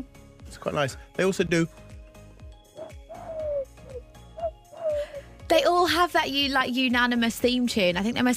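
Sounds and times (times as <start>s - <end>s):
speech: 0.0s - 1.8s, 5.5s - 8.3s
pigeon cooing: 2.8s - 5.2s.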